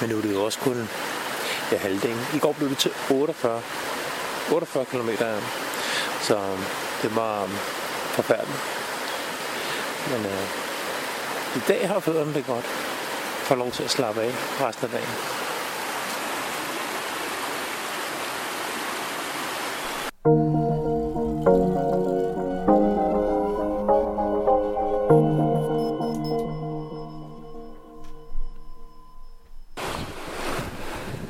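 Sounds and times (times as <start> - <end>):
speech: 0.0 - 5.6, 6.2 - 8.8, 10.0 - 10.6, 11.6 - 12.8, 13.5 - 15.4
rushing brook water: 0.0 - 20.2
sustained melodic tones: 20.2 - 29.8.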